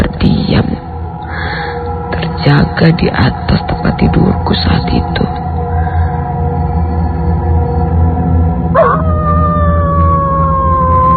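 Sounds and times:
steady low hum: 0:00.0 - 0:11.1
speech: 0:02.5 - 0:05.4
dog howling: 0:08.7 - 0:11.1.

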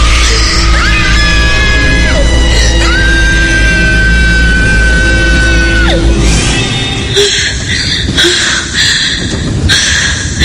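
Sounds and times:
loud piercing scream breaking into ragged shrieks: 0:00.0 - 0:06.2
dense noisy background: 0:00.0 - 0:10.4.

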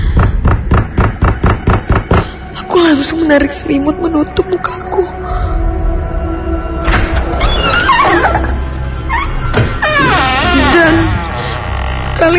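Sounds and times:
low rumbling background: 0:00.0 - 0:12.3
loud banging on a bedroom door: 0:00.3 - 0:02.2
speech: 0:03.0 - 0:05.2
creaking squeals of bedroom door hinges: 0:06.9 - 0:12.3.

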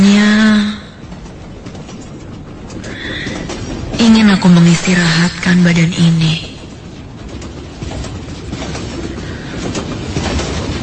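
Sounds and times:
train wheels clacking over rail joints: 0:00.0 - 0:10.8
speech: 0:04.4 - 0:06.5.

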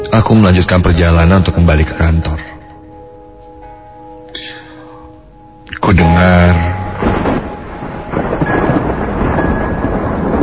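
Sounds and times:
speech: 0:00.2 - 0:02.5, 0:05.8 - 0:06.8
deep rumbling thunder: 0:06.0 - 0:10.4.

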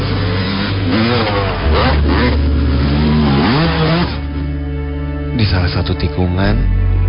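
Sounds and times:
loud motorcycle exhaust revving: 0:00.0 - 0:04.6
speech: 0:05.8 - 0:06.8.

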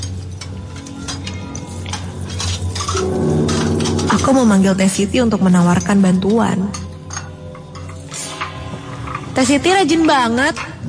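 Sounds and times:
plates and cutlery clinking while washed by hand: 0:00.0 - 0:04.7, 0:05.6 - 0:09.4
speech: 0:04.2 - 0:06.8, 0:09.4 - 0:10.7.

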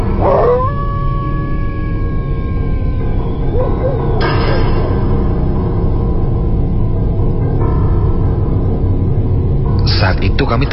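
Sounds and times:
steady dense rumble: 0:00.1 - 0:10.7
dog howling: 0:00.2 - 0:01.5, 0:03.5 - 0:04.7.

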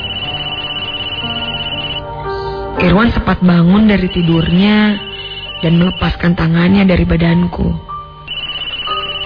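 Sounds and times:
mobile phone ringtone with pulsing electronic tone: 0:00.0 - 0:02.3, 0:03.7 - 0:06.8, 0:07.8 - 0:09.2
speech: 0:02.8 - 0:07.9.

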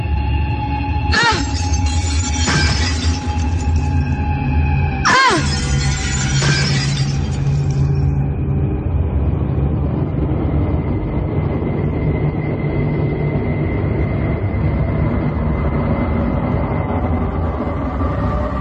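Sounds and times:
steady low rumble: 0:00.0 - 0:18.5
ringing, tinkling glass shards: 0:01.1 - 0:04.2, 0:05.1 - 0:08.1
window glass smashed with a piece of wood: 0:01.1 - 0:04.2, 0:05.1 - 0:08.1.

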